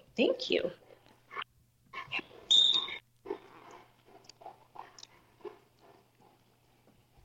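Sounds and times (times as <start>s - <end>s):
speech: 0.2s - 0.8s
puppy whimpering and yelping: 2.0s - 3.0s.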